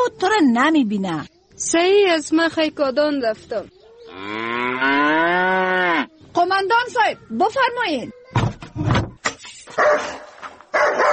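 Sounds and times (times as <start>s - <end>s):
speech: 0.1s - 8.2s
dog barking: 9.8s - 11.1s.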